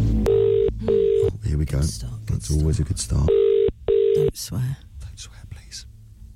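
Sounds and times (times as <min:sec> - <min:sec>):
humming telephone line: 0:00.1 - 0:04.5
outgoing telephone call ringing tones: 0:00.3 - 0:01.3, 0:03.3 - 0:04.3
speech: 0:01.9 - 0:03.5, 0:04.4 - 0:05.4.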